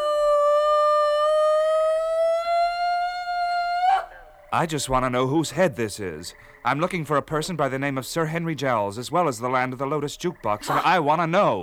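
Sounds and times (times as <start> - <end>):
long shrill scream: 0.0 - 4.3
speech: 4.5 - 11.6.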